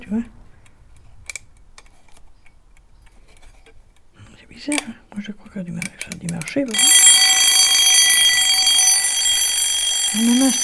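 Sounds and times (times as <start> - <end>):
speech: 0.1 - 0.4, 4.6 - 6.9, 10.2 - 10.6
wristwatch alarm ringing with shrill electronic tone: 6.7 - 10.6.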